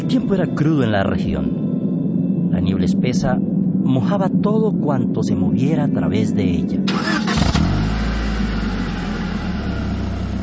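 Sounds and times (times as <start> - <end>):
speech: 0.1 - 1.6, 2.6 - 6.9
truck engine starting in foggy raw weather: 6.9 - 10.4.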